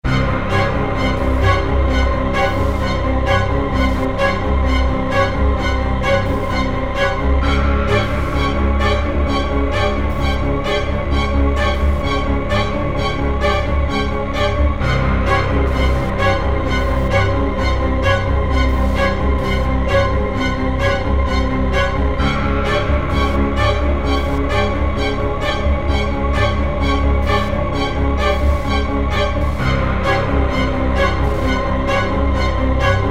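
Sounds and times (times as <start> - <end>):
horror music intro at 130 BPM: 0.0 - 33.0.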